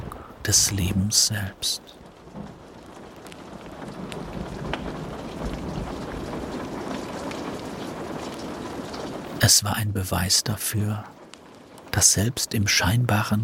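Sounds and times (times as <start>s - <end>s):
low thunder rumbling and rolling: 0.0s - 13.4s
steady rain pattering densely on a surface: 0.0s - 13.4s
speech: 0.4s - 2.5s, 9.5s - 11.2s, 12.0s - 13.4s.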